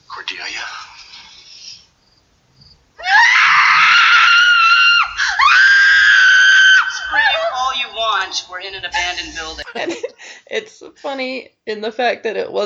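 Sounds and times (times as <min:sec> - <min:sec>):
speech: 0:00.3 - 0:01.0, 0:08.3 - 0:12.6
woman screaming in terror: 0:03.0 - 0:08.4
laughter: 0:08.7 - 0:10.4.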